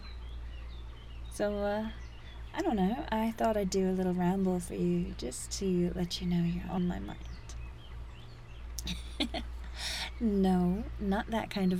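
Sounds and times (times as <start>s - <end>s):
bird chirps: 0.0s - 11.7s
low outdoor rumble: 0.0s - 11.7s
speech: 1.4s - 7.3s, 8.8s - 11.7s.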